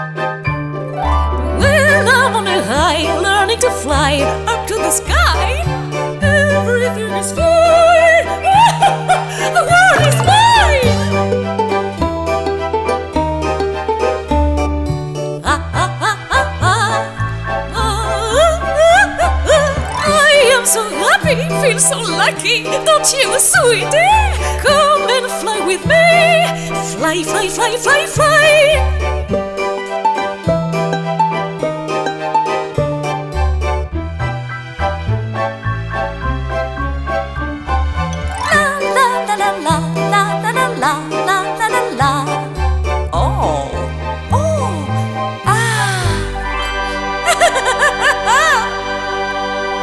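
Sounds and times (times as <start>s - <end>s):
lyrical chanson: 0.2s - 49.8s
laughter: 8.4s - 10.9s, 45.6s - 49.0s.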